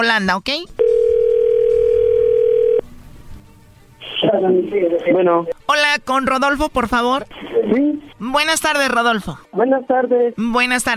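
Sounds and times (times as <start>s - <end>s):
speech: 0.0s - 0.9s, 4.2s - 10.9s
steady telephone tone of a call ringing through: 0.8s - 2.8s.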